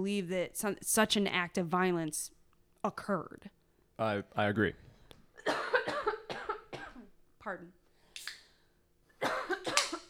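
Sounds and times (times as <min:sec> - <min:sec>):
speech: 0:00.0 - 0:05.6, 0:07.4 - 0:07.8
harsh raspy coughs: 0:05.4 - 0:07.1, 0:09.2 - 0:10.0.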